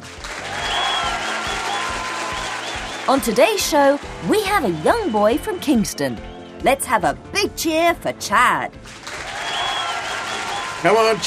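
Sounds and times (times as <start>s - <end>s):
talent show audience applauding the judging panel: 0.0s - 6.4s, 8.9s - 11.2s
speech: 3.1s - 9.0s, 10.8s - 11.2s.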